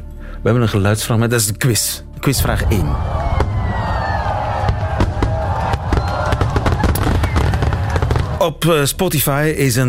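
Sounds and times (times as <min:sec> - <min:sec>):
speech: 0:00.4 - 0:03.3, 0:08.4 - 0:09.8
fireworks exploding with sharp cracks and bangs: 0:02.4 - 0:08.4.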